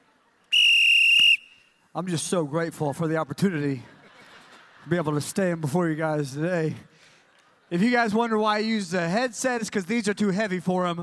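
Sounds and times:
referee whistle blown to start the fourth quarter: 0.5 - 1.8
speech: 2.0 - 4.0, 4.8 - 7.1, 7.7 - 11.0
laughter: 3.2 - 8.2.

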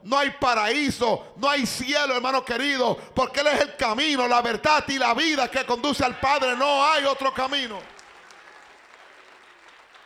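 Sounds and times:
speech: 0.0 - 8.0
audience applauding: 6.1 - 10.0.

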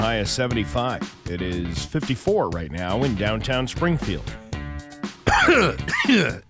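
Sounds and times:
speech: 0.1 - 4.4, 5.4 - 6.4
harsh rasping coughs with a voiced groaning edge: 5.2 - 6.4
person clearing throat: 5.3 - 6.4.

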